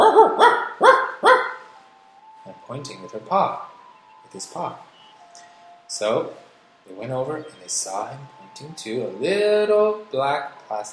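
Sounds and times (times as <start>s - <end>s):
dog barking: 0.0s - 1.6s
speech: 2.7s - 3.7s, 4.3s - 4.9s, 5.9s - 10.9s.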